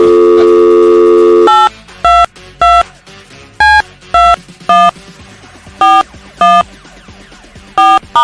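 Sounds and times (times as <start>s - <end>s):
telephone keypad tones: 0.0s - 2.8s, 3.6s - 4.9s, 5.8s - 6.6s, 7.8s - 8.2s.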